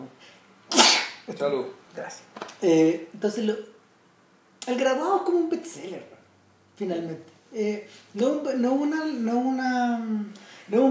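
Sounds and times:
person half-stifled sneezing: 0.7s - 1.3s
speech: 1.3s - 3.8s, 4.7s - 6.2s, 6.8s - 10.8s.

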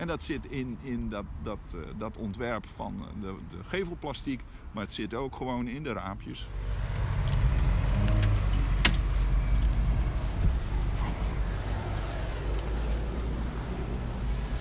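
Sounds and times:
speech: 0.0s - 7.0s
low rumble of a running vehicle: 0.0s - 14.5s
keys jangling as they are handed over: 7.0s - 11.0s, 12.4s - 14.2s.

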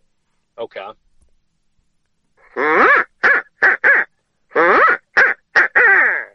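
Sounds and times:
speech: 0.6s - 1.1s, 2.6s - 3.0s
owl hoot blown on a turkey call: 2.4s - 6.3s.

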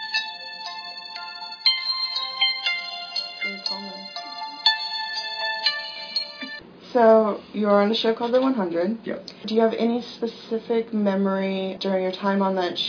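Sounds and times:
old flip phone alarm ringtone beeping electronic melody: 0.0s - 6.6s
speech: 6.9s - 12.8s.

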